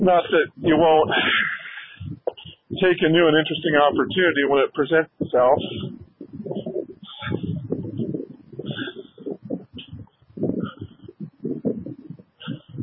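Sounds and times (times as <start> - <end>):
speech: 0.0 - 1.5, 2.8 - 6.0
bird cooing: 5.6 - 12.8.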